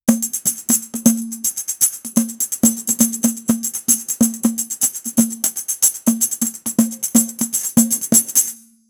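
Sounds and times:
very cheerful percussion rhythm for a celebration: 0:00.1 - 0:08.8.

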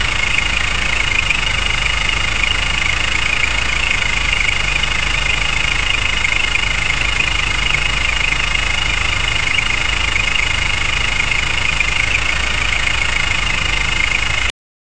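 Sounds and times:
2-cylinder engine running: 0:00.0 - 0:14.5.

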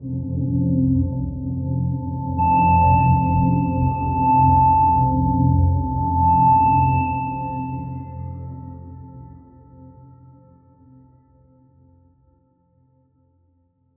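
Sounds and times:
slow dramatic melodic ambient background music: 0:01.0 - 0:09.8.

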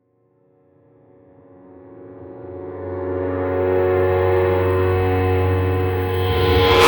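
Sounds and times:
reversed piano: 0:04.0 - 0:06.8
layered whispery textures: 0:05.8 - 0:06.8.

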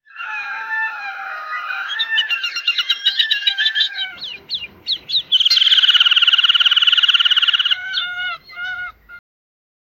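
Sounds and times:
hybrid bird calls with nasal harmonic notes: 0:01.8 - 0:09.2.

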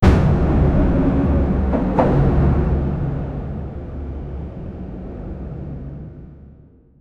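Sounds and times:
marine ship sonar pings: 0:00.0 - 0:04.0.

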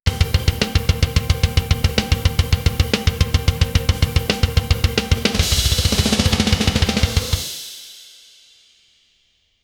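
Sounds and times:
rock drum solo: 0:00.1 - 0:08.2.

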